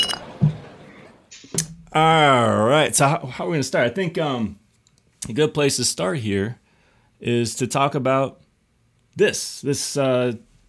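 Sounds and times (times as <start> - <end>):
glass beer bottles clinking in a toast: 0.0 - 0.6
speech: 2.0 - 4.6, 5.2 - 6.6, 7.2 - 8.4, 9.2 - 10.5.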